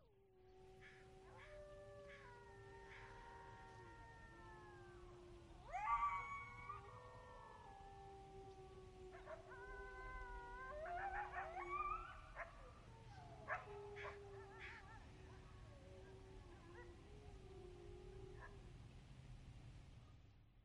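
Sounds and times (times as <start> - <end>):
rural ambience: 0.0 - 20.6
distant wolf pack howling: 0.4 - 18.9.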